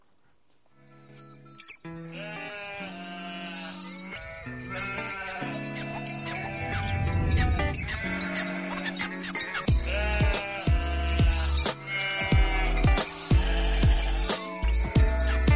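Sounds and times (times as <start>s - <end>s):
sheep bleating: 2.0s - 14.3s.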